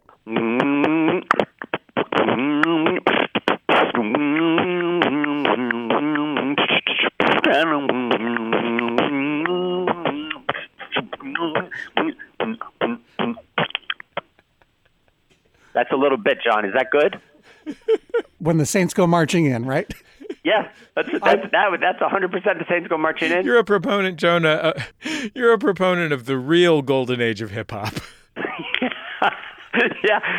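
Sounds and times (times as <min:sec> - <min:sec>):
person humming a steady tonal melody: 0:00.0 - 0:13.9
beatbox clicks and pops: 0:00.0 - 0:14.3
laughter: 0:07.2 - 0:25.8, 0:27.7 - 0:30.3
speech: 0:16.3 - 0:17.3, 0:18.4 - 0:28.2, 0:29.2 - 0:30.3.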